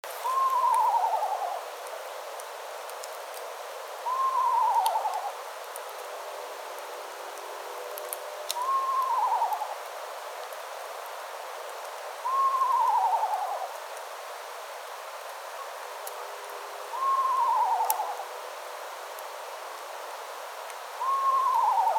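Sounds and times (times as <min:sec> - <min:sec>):
Eastern Screech Owl calling: 0:00.2 - 0:01.7, 0:04.0 - 0:05.4, 0:08.5 - 0:09.9, 0:12.2 - 0:13.8, 0:16.8 - 0:18.4, 0:21.0 - 0:21.9.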